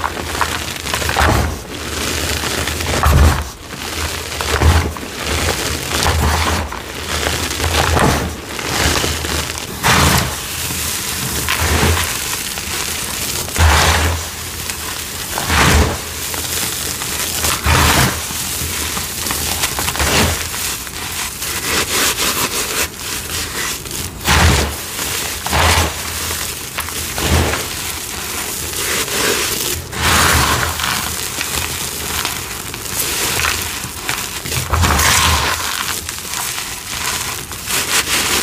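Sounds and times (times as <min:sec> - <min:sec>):
crushing bursts with low thud: 0:00.0 - 0:21.4, 0:24.0 - 0:28.7
cornstarch crunchies and dyed gym chalk crumbling: 0:00.0 - 0:38.4.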